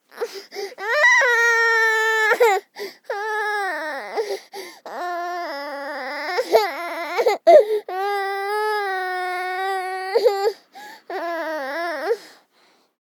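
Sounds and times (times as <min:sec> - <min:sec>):
24-month-old girl weeping: 0:00.2 - 0:12.2.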